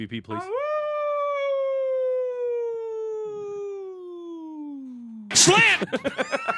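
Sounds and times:
speech: 0:00.0 - 0:00.8, 0:05.4 - 0:06.5
person imitating a wolf howl: 0:00.3 - 0:05.3
laughter: 0:05.3 - 0:06.5.

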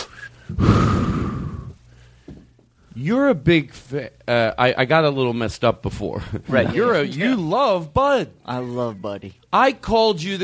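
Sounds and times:
deep breath: 0:00.1 - 0:02.5
speech: 0:00.5 - 0:00.8, 0:03.0 - 0:10.4.

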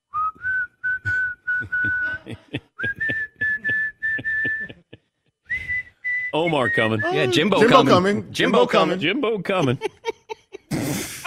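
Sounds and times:
person whistling a simple melody: 0:00.1 - 0:04.9, 0:05.5 - 0:07.6
laughter: 0:01.6 - 0:05.0, 0:06.5 - 0:11.2
speech: 0:06.4 - 0:10.0.

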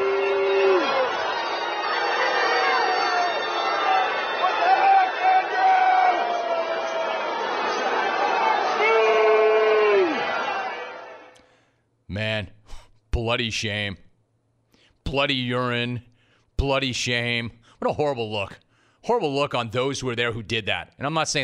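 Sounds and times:
large stadium crowd booing a player: 0:00.0 - 0:11.4
speech: 0:13.3 - 0:14.0, 0:15.1 - 0:21.4.

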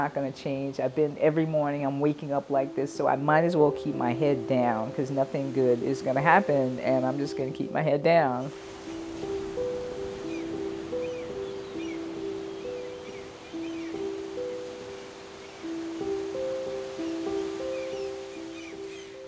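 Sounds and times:
speech: 0:00.0 - 0:08.8
soft sustained musical tones: 0:00.0 - 0:19.2
ocean surf rolling on a beach: 0:08.5 - 0:19.2.

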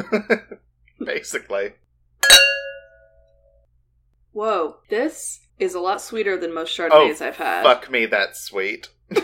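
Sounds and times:
speech: 0:00.0 - 0:01.8, 0:04.4 - 0:09.2
wine glasses clinking in a toast: 0:02.2 - 0:03.1.

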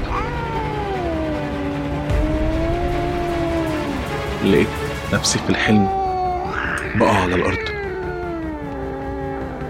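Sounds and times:
black cat caterwauling in a cave-like tomb: 0:00.0 - 0:04.2, 0:05.6 - 0:09.6
speech: 0:04.4 - 0:06.0, 0:07.0 - 0:07.7.

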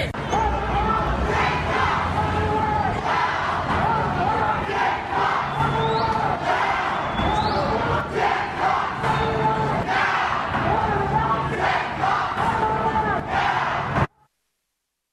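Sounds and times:
large crowd chanting in unison: 0:00.0 - 0:14.1.

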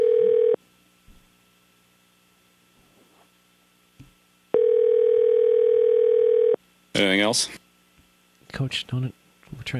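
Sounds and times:
cell phone call ringback tone: 0:00.0 - 0:00.6, 0:04.5 - 0:06.6
speech: 0:07.0 - 0:07.6, 0:08.5 - 0:09.7.

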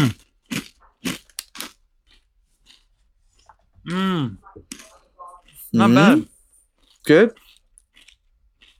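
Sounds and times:
speech: 0:00.0 - 0:00.6, 0:03.9 - 0:04.4, 0:05.7 - 0:06.3, 0:07.1 - 0:07.4
someone biting into a crispy fried corn kernel snack: 0:00.0 - 0:02.9, 0:06.6 - 0:08.7
softer chewing crackles: 0:00.0 - 0:08.7.

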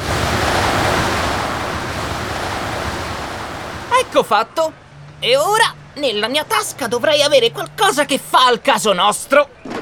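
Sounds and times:
huge blowing gust of air sweeping smog away: 0:00.0 - 0:03.9
speech: 0:04.1 - 0:09.6.

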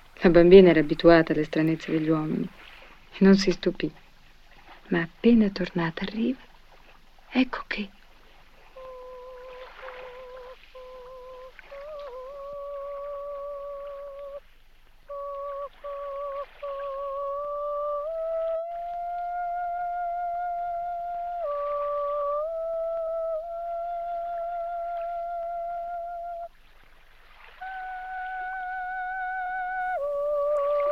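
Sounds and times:
soft steady wash of water-like noise: 0:00.0 - 0:30.8
speech: 0:00.2 - 0:04.0, 0:04.9 - 0:06.5, 0:07.3 - 0:08.0
female opera singer singing wordless operatic vocalise in a film: 0:08.8 - 0:14.4, 0:15.1 - 0:26.5, 0:27.6 - 0:30.8.

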